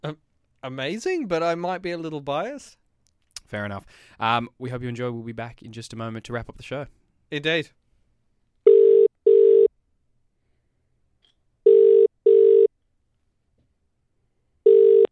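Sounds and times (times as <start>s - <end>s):
speech: 0.0s - 2.8s, 3.5s - 7.8s
telephone ringing tone heard down the line: 8.7s - 9.7s, 11.7s - 12.7s, 14.6s - 15.1s.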